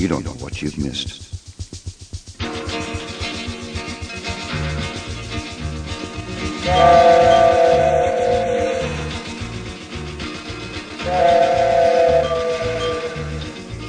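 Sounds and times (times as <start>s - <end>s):
speech: 0.0s - 1.3s
coal-fired steam train chugging past: 0.0s - 13.8s
steam train whistle blasts: 6.6s - 9.3s, 11.0s - 13.6s.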